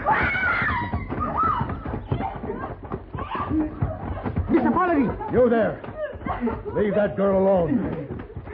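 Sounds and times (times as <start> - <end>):
woman screaming: 0.0 - 2.4
laughter: 0.8 - 8.5
speech: 5.0 - 8.1.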